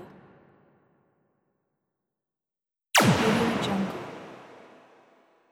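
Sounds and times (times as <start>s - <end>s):
plasma gun shot: 3.0s - 5.2s.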